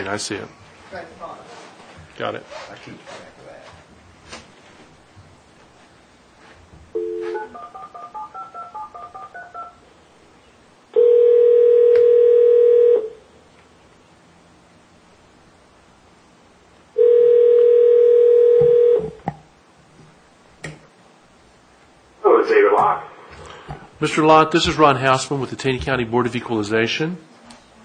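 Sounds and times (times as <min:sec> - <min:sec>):
speech: 0:00.0 - 0:01.5, 0:02.2 - 0:03.6, 0:24.0 - 0:27.3
phone ringing tones on the line: 0:06.9 - 0:09.8, 0:11.0 - 0:13.2, 0:17.0 - 0:19.2.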